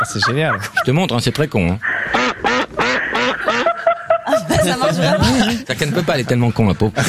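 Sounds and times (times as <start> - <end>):
laughter: 0.0 - 1.1, 2.0 - 7.0
speech: 0.0 - 2.3, 4.6 - 7.0
duck quacking: 1.8 - 4.0.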